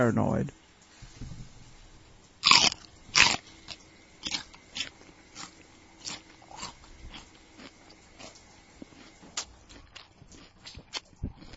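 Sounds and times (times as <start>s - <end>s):
speech: 0.0s - 0.6s
crisp crunching bites of an apple for a Foley effect: 2.4s - 11.5s.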